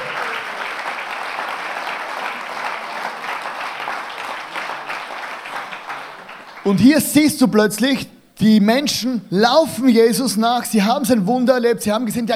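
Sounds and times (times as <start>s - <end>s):
audience applause: 0.0s - 6.8s
speech: 6.7s - 12.3s.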